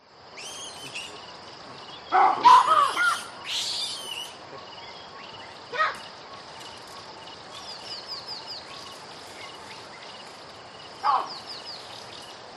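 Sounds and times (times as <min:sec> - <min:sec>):
steady hiss: 0:00.0 - 0:12.5
baboon barking and grunting calls: 0:01.6 - 0:03.3, 0:11.0 - 0:11.4.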